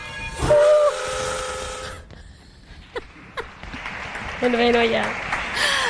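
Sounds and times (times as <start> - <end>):
steam train whistle blasts: 0.4 - 2.1
speech: 4.4 - 5.7.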